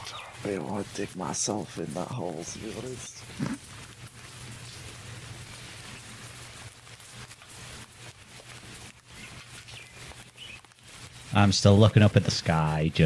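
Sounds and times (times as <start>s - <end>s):
rain falling: 0.0s - 13.0s
speech: 0.4s - 3.7s, 11.4s - 13.0s.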